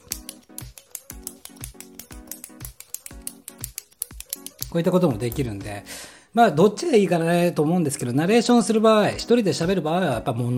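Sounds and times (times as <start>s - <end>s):
ballpoint pen clicking: 0.0s - 5.5s
speech: 4.7s - 10.5s.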